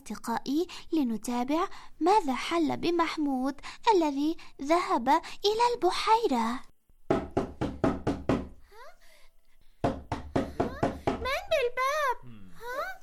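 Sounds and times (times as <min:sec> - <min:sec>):
speech: 0:00.1 - 0:07.2
loud sharp knocking on a door: 0:07.0 - 0:08.6, 0:09.8 - 0:11.4.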